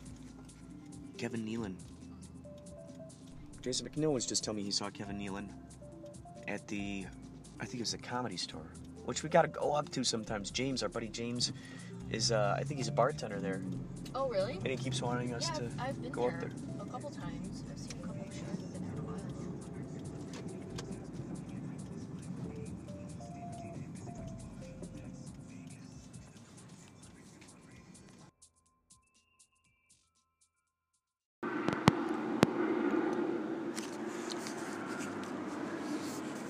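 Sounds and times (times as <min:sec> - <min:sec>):
helicopter droning overhead with a low rumble: 0:00.0 - 0:06.2, 0:10.1 - 0:25.5, 0:31.4 - 0:36.4
speech: 0:01.2 - 0:01.9, 0:03.6 - 0:05.8, 0:06.5 - 0:17.2.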